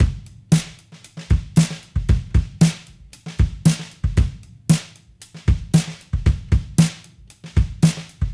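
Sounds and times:
1970s analog funk disco drums: 0.0 - 8.3.

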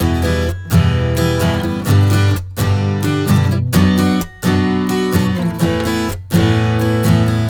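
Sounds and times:
acoustic pop guitar playing in E minor: 0.0 - 7.4.

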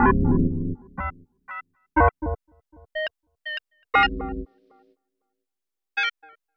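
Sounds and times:
tape arpeggio with otherworldly rhythms: 0.0 - 1.2, 4.0 - 4.5.

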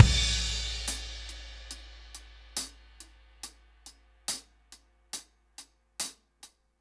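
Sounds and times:
laid back 70's ballad drum loop: 0.0 - 3.1.

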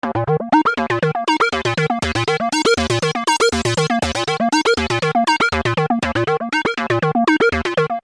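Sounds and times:
techno synth arpeggio in D sharp: 0.0 - 8.0.

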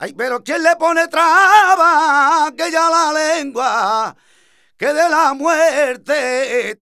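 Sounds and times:
male cantaor singing flamenco vocals: 0.0 - 4.2, 4.8 - 6.8.

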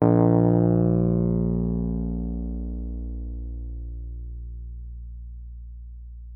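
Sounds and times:
electric piano: 0.0 - 4.2.

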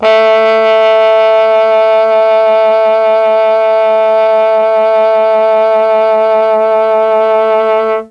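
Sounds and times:
Mellotron chamber trombone playing A2: 0.0 - 8.0.

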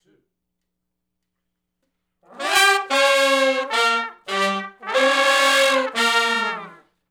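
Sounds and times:
R and B horn section riff in B flat played in unison: 2.3 - 6.8.

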